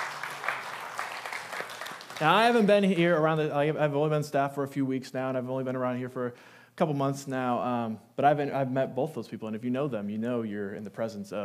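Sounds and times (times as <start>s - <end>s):
audience applause: 0.0s - 2.9s
speech: 2.2s - 11.4s.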